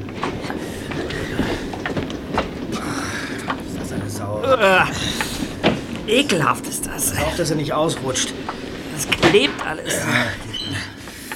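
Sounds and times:
moving train carriage rattling on rails: 0.0 - 11.3
train wheels clattering on the rails: 0.0 - 11.3
speech: 4.6 - 5.2, 6.1 - 10.9.

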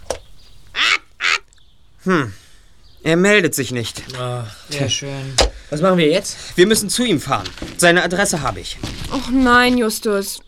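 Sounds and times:
pet bird squawking: 0.4 - 1.8
speech: 2.0 - 2.4, 3.0 - 10.4.

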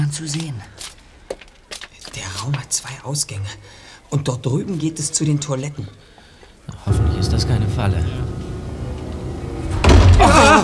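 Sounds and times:
speech: 0.1 - 0.8, 2.2 - 6.1, 6.7 - 8.3
door slamming shut: 6.9 - 10.6.

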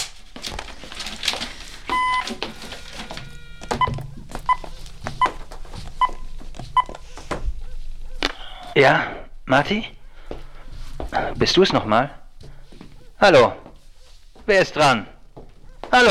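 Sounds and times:
telephone redial button electronic beep: 1.9 - 4.6
speech: 8.8 - 10.0, 11.4 - 12.2, 13.2 - 13.6, 14.5 - 15.1.

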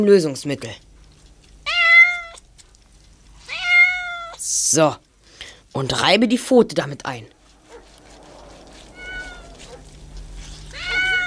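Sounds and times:
speech: 0.0 - 0.9, 4.7 - 5.0, 5.8 - 7.4
low hum: 0.0 - 11.2
male cat meowing: 1.6 - 2.4, 3.4 - 4.4, 7.7 - 11.2.

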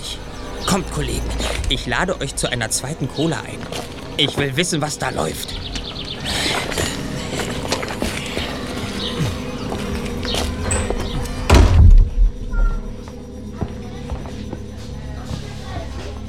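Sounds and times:
faint buzzing: 0.0 - 16.2
steady hum of ambience: 0.0 - 16.2
speech: 0.7 - 5.7
door to a side room swinging shut: 10.4 - 13.1.

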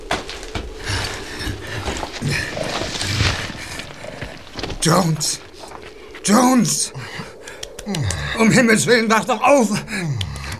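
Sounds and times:
horse clattering to a halt: 0.0 - 6.3
speech: 4.8 - 5.5, 6.3 - 7.3, 7.9 - 10.3.

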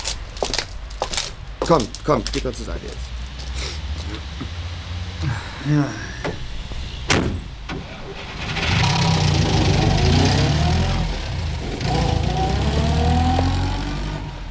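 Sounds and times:
speech: 1.7 - 3.1, 5.2 - 6.1
car driving away: 1.8 - 14.4
sharp thud: 7.0 - 7.6.

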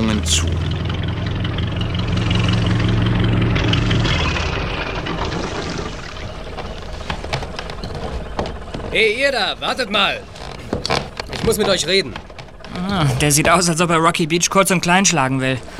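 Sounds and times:
small motorboat engine idling while docking at a jetty: 0.0 - 15.7
speech: 0.3 - 0.6, 9.0 - 10.3, 11.4 - 15.7
water splashing: 0.8 - 7.8.

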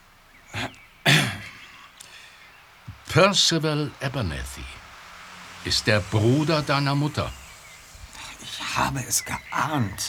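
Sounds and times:
man clearing his throat heavily: 0.6 - 1.7
speech: 3.1 - 4.8, 5.6 - 7.4, 8.4 - 10.0.

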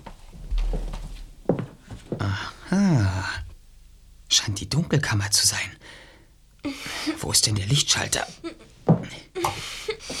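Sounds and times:
low rumble: 0.3 - 2.4
door opening: 0.4 - 1.6
soft thud: 0.4 - 1.8
speech: 2.3 - 3.4, 4.4 - 6.0, 7.2 - 9.2.

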